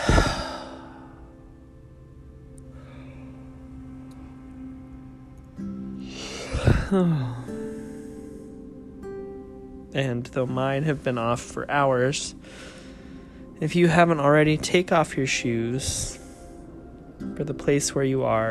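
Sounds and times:
deep breath during an online worship gathering: 0:00.0 - 0:01.4, 0:02.7 - 0:03.8, 0:06.0 - 0:08.8, 0:12.4 - 0:13.6
steady sustained musical drone: 0:00.0 - 0:18.5
speech: 0:06.9 - 0:07.5, 0:10.0 - 0:12.7, 0:13.6 - 0:16.2, 0:17.3 - 0:18.5.

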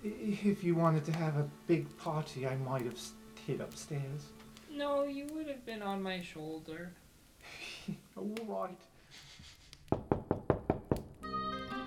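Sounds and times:
speech: 0:00.0 - 0:09.3
sustained musical tone: 0:00.3 - 0:04.6, 0:11.2 - 0:11.8
knocking on a wooden door: 0:09.9 - 0:11.2.

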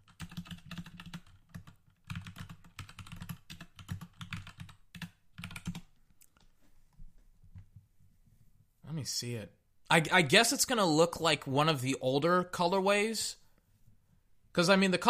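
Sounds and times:
rapid typing on a computer keyboard: 0:00.0 - 0:06.5
speech: 0:09.0 - 0:13.4, 0:14.6 - 0:15.0.

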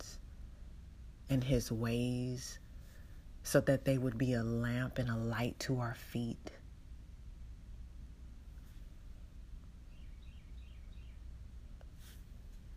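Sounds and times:
low outdoor rumble and hiss: 0:00.0 - 0:12.7
speech: 0:01.3 - 0:02.6, 0:03.4 - 0:06.6
birds singing outside: 0:09.8 - 0:11.4.

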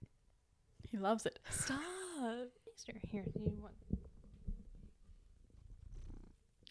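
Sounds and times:
speech: 0:01.0 - 0:03.9
male cat purring: 0:05.5 - 0:06.5.

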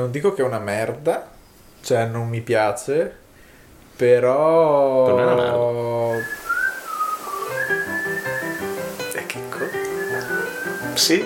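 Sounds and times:
speech: 0:00.0 - 0:03.2, 0:04.0 - 0:06.4, 0:11.0 - 0:11.2
person whistling a steady gliding melody: 0:06.1 - 0:11.2.

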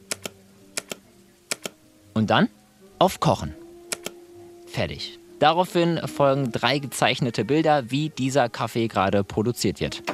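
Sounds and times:
double mouse clicks: 0:00.0 - 0:01.8, 0:03.9 - 0:04.2
faint low hum: 0:00.0 - 0:10.1
speech: 0:02.2 - 0:03.6, 0:04.7 - 0:10.1.

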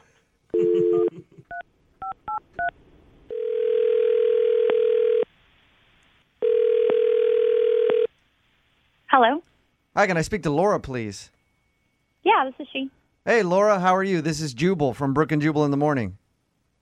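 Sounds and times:
phone ringback tones: 0:03.3 - 0:05.2, 0:06.4 - 0:08.1
speech: 0:09.2 - 0:11.4, 0:12.3 - 0:16.2.

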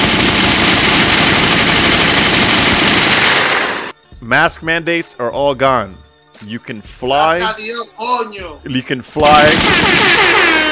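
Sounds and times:
rapid automatic gunfire: 0:00.0 - 0:03.8, 0:09.3 - 0:10.6
speech: 0:04.3 - 0:10.6.

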